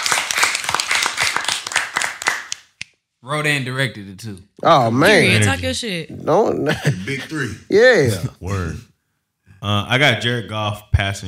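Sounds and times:
hand clapping: 0.0 - 3.0
speech: 3.2 - 8.9, 9.6 - 11.2
laughter: 6.6 - 8.8.

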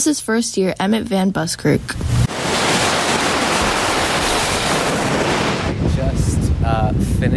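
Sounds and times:
speech: 0.0 - 2.1
lake waves washing on shore at night: 2.0 - 7.2.

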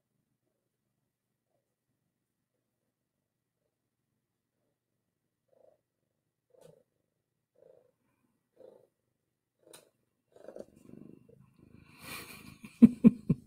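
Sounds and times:
cat purring: 4.4 - 13.4.

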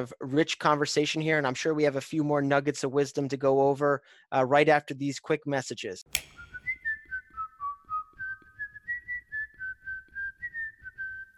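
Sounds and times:
speech: 0.0 - 6.5
person whistling a song: 7.0 - 11.3.

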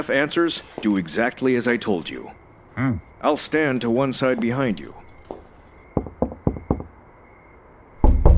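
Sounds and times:
speech: 0.0 - 5.0
sharp knocks on a wooden back room door: 5.9 - 7.0, 8.0 - 8.3.

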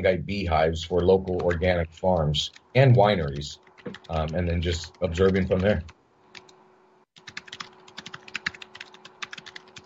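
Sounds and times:
speech: 0.0 - 6.0
faint steady hum: 0.0 - 9.8
rapid typing on a computer keyboard: 3.3 - 6.5, 7.2 - 9.8.

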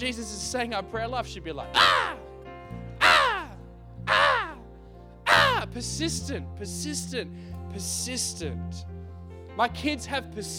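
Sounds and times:
speech: 0.0 - 2.2, 5.7 - 9.0, 9.6 - 10.5
person imitating seagull squawks: 1.8 - 2.2, 3.0 - 4.6, 5.3 - 5.6.

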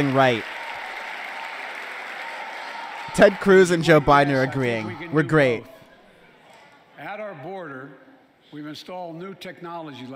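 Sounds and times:
speech: 0.0 - 0.5, 3.2 - 5.8, 8.5 - 10.1
audience applause: 0.0 - 5.0.

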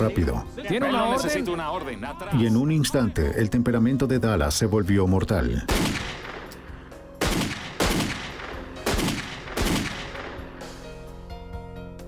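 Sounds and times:
speech: 0.0 - 6.2
gunshots fired during an armed confrontation: 5.7 - 6.6, 7.2 - 10.8.

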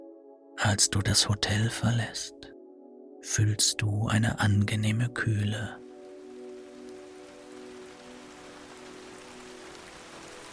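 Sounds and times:
speech: 0.6 - 2.4, 3.2 - 5.8
steady rain falling: 5.2 - 10.5.

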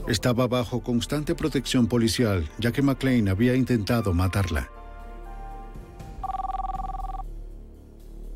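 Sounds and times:
speech: 0.1 - 4.8
cell phone ringing with a warbling electronic trill: 6.2 - 7.3.

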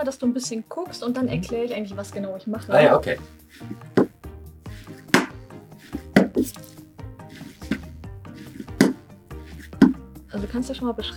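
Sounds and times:
speech: 0.0 - 4.0, 10.4 - 11.1
pottery clay kneaded with both hands in a forward-rolling motion: 3.6 - 10.7.

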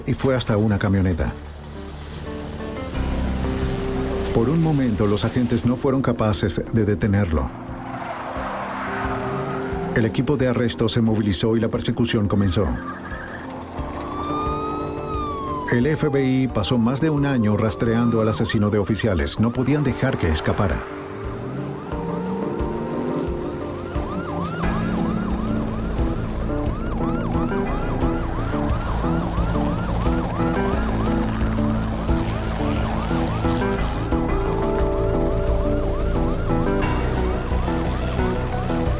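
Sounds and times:
speech: 0.0 - 1.5, 4.4 - 7.7, 10.0 - 13.0, 15.7 - 21.0
police patrol car engine rumble and road noise: 0.0 - 38.9
multiple police car sirens wailing during a chase: 7.4 - 10.4, 12.5 - 38.9.

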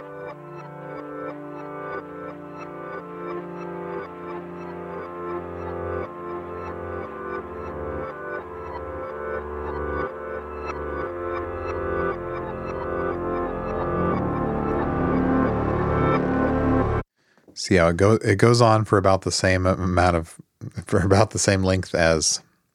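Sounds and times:
dense ambient music played backwards with delay: 0.0 - 17.1
speech: 17.7 - 22.5.

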